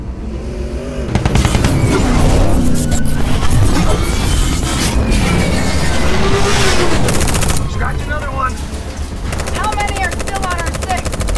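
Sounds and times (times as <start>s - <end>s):
constant roar of engines: 0.0s - 11.3s
gunfire bursts in an audio drama battle: 1.1s - 2.2s, 7.1s - 7.8s, 9.3s - 11.3s
booming blasts in an audio drama battle: 1.1s - 11.3s.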